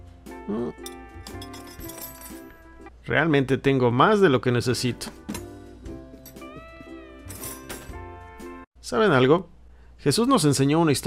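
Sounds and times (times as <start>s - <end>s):
speech: 0.5s - 1.9s, 3.1s - 5.3s, 8.9s - 11.0s
four metal wrenches clinking and rattling as tools are organized: 0.8s - 2.6s, 7.2s - 8.0s.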